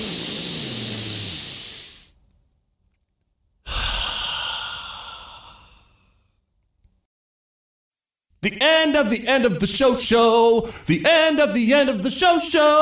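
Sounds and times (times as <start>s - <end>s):
deep breath: 0.0s - 2.2s, 3.6s - 6.4s, 10.6s - 10.9s
speech: 8.4s - 12.7s.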